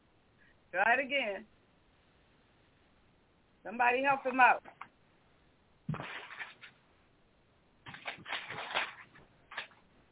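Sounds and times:
speech: 0.7s - 1.6s, 3.6s - 4.9s
book pages being turned: 7.8s - 9.8s.

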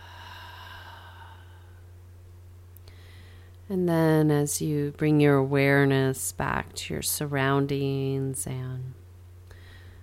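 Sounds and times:
deep breath in and out during a guided relaxation session: 0.0s - 1.9s, 2.8s - 3.6s, 9.5s - 10.0s
steady low hum: 0.0s - 10.0s
speech: 3.7s - 9.0s.

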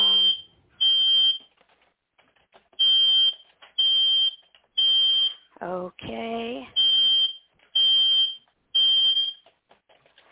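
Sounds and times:
fire alarm blaring: 0.0s - 1.4s, 2.8s - 5.4s, 6.8s - 9.4s.

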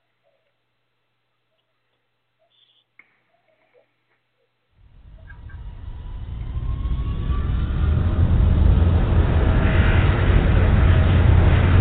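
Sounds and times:
aircraft engine roar on takeoff roll down the runway: 4.8s - 11.7s.

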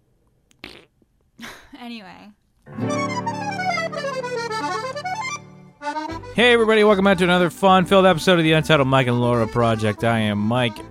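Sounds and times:
fart: 0.5s - 1.0s
speech: 1.8s - 3.4s, 5.8s - 10.9s.

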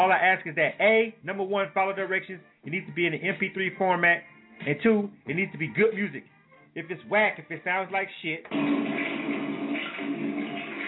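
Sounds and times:
speech: 0.0s - 9.0s
toilet flushing: 8.5s - 10.8s.

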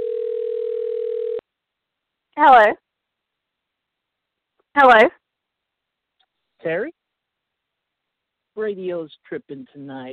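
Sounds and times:
telephone ringing with a steady electronic tone: 0.0s - 1.4s
speech: 2.4s - 2.8s, 4.8s - 5.2s, 6.6s - 7.0s, 8.6s - 10.1s.

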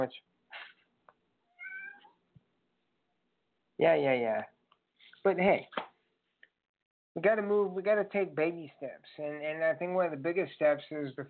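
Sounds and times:
speech: 0.0s - 0.6s, 3.8s - 4.6s, 5.2s - 5.8s, 7.2s - 11.2s
cat meowing: 1.5s - 2.2s.

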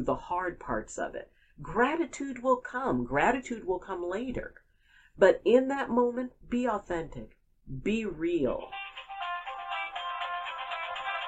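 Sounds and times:
speech: 0.0s - 4.6s, 5.2s - 8.8s
mobile phone ringtone with bright melodic electronic tone: 8.7s - 11.2s.

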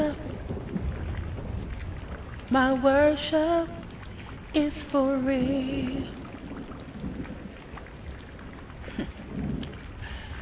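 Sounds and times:
low rumbles of thunder: 0.0s - 10.4s
steady rain: 0.0s - 10.4s
speech: 2.5s - 3.8s, 4.5s - 6.2s.

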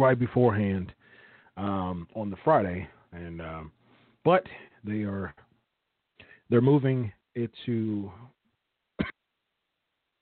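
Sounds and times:
speech: 0.0s - 1.0s, 1.6s - 5.4s, 6.5s - 8.3s
faint trailing breath: 1.0s - 1.6s, 3.8s - 4.8s, 6.2s - 6.5s
sharp cough: 9.0s - 9.2s.

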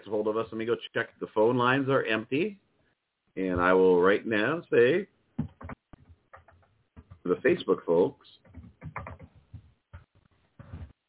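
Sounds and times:
speech: 0.1s - 2.6s, 3.4s - 5.7s, 7.2s - 8.3s
typing on a computer keyboard with plastic keys: 5.4s - 7.2s, 8.4s - 9.4s.

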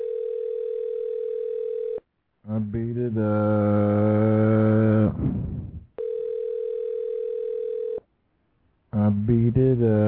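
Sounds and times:
telephone ringing: 0.0s - 2.0s, 6.0s - 8.0s
speech: 2.5s - 5.4s, 9.3s - 10.0s.

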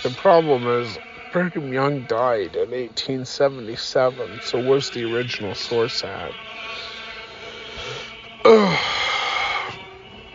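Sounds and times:
speech: 0.1s - 6.8s
person yawning: 8.0s - 9.8s.

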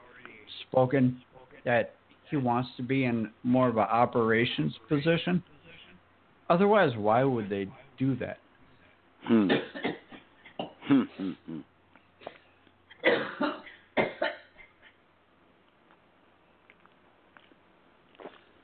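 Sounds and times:
speech: 0.7s - 5.5s, 6.5s - 8.4s, 9.2s - 9.9s, 10.9s - 11.7s
harsh coughing: 9.2s - 15.0s
throaty clearing: 9.2s - 15.0s.

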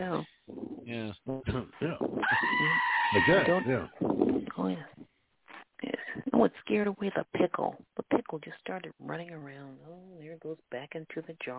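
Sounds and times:
speech: 0.0s - 1.5s, 3.1s - 5.0s, 6.4s - 11.5s
scared goat squealing and bleating: 2.2s - 3.9s.

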